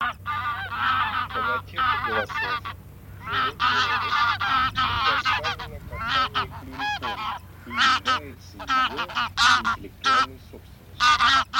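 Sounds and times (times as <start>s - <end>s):
goose call: 0.0s - 11.5s
greylag geese cackling: 0.0s - 11.5s.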